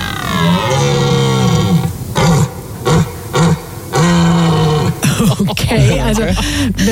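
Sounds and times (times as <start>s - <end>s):
red deer stag bellowing during the rut: 0.0s - 5.0s
laughter: 5.0s - 6.8s
speech: 6.1s - 6.8s.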